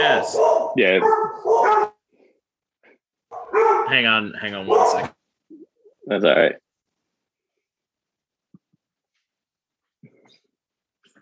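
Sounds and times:
dog barking: 0.0s - 2.0s, 3.3s - 4.0s, 4.6s - 5.2s
speech: 0.1s - 1.9s, 3.6s - 5.2s, 6.1s - 6.6s.

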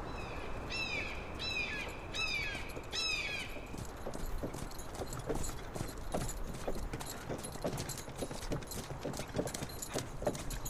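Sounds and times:
bird calls: 0.1s - 5.9s
ox hooves clopping while pulling a cart: 0.9s - 10.6s
ox-drawn cart rolling: 2.5s - 10.6s.

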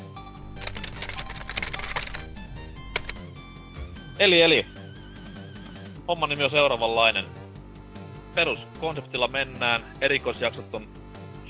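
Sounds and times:
rapid typing on a computer keyboard: 0.6s - 2.3s, 2.9s - 3.2s
speech: 4.2s - 4.8s, 6.1s - 7.4s, 8.4s - 11.4s.

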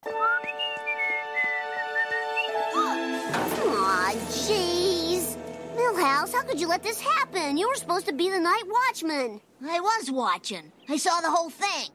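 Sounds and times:
sustained whistling creaking tones: 0.0s - 3.0s
speech: 3.3s - 11.9s.

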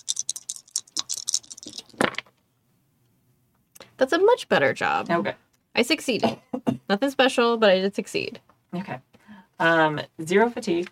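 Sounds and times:
plastic dice being rolled: 0.0s - 2.4s
speech: 4.0s - 10.9s.

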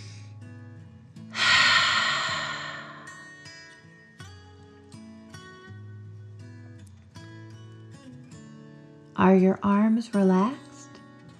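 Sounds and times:
deep breath in and out during a children's relaxation exercise: 1.4s - 3.8s
speech: 9.2s - 10.6s.

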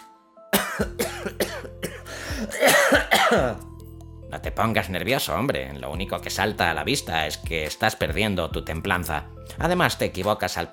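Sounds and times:
man coughing hard in a hacking fit: 0.6s - 3.6s
speech: 2.4s - 3.7s, 4.3s - 10.7s.

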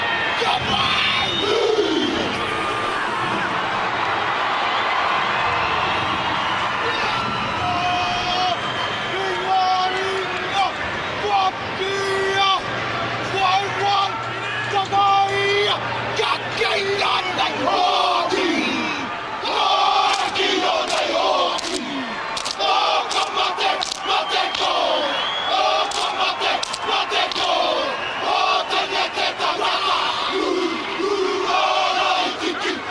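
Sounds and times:
roaring stadium crowd at an NFL game: 0.0s - 32.9s
group of men shouting a haka war chant in unison: 0.4s - 2.4s, 16.2s - 32.9s.

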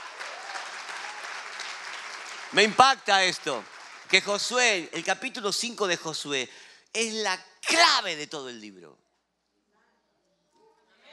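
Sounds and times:
audience applauding: 0.0s - 4.8s
speech: 2.5s - 9.0s.

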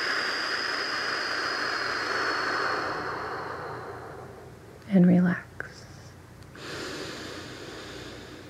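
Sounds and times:
breathing in and out during a guided relaxation exercise: 0.0s - 4.8s, 6.5s - 8.4s
speech: 4.9s - 5.5s.

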